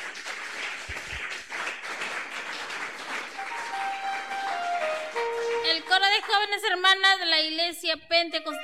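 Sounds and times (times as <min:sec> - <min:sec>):
church audience applauding to welcome a choir: 0:00.0 - 0:06.7
speech: 0:06.2 - 0:08.6.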